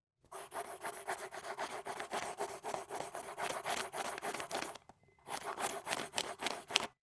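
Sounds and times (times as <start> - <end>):
pencil sound: 0.3 - 7.0.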